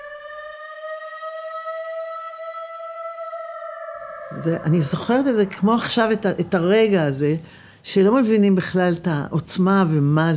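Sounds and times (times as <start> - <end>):
loud air-raid siren wailing: 0.0 - 6.3
speech: 4.3 - 10.3.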